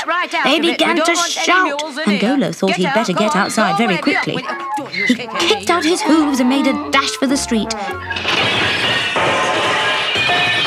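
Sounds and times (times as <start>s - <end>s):
speech: 0.1s - 8.7s
laughter: 0.3s - 8.2s
shop's plate glass window smashing: 8.0s - 10.6s.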